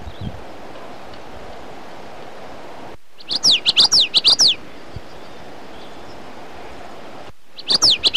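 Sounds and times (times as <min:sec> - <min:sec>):
common yellowthroat singing: 0:03.2 - 0:06.8, 0:07.5 - 0:08.1.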